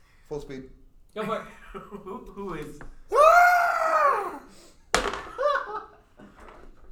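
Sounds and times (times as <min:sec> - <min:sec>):
speech: 0:00.3 - 0:03.2
laughter: 0:01.2 - 0:04.4, 0:05.2 - 0:06.4
person screaming with a gurgling voice: 0:03.1 - 0:04.5.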